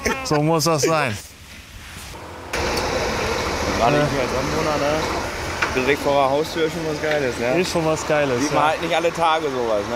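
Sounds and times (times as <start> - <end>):
speech: 0.3 - 1.3, 3.8 - 5.2, 5.8 - 9.9
heavy truck engine rumbling: 2.1 - 9.9.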